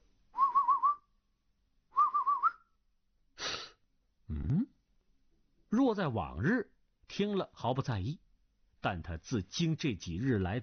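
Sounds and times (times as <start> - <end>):
soft warbling whistles from outside a wall: 0.4 - 1.1, 1.9 - 2.8
speech: 5.9 - 8.2, 8.8 - 10.6.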